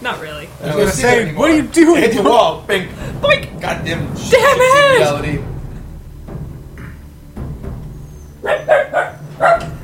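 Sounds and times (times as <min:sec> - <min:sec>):
speech: 0:00.0 - 0:05.5
low rumble: 0:00.0 - 0:09.8
dog barking: 0:08.4 - 0:09.8.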